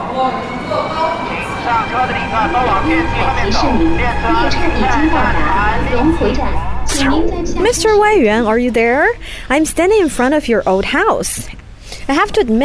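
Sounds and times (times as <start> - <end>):
indistinct voices murmuring: 0.0 - 11.5
high-speed train rumbling toward a rural village in Hunan province: 0.0 - 11.6
speech: 0.2 - 1.1, 1.7 - 12.6.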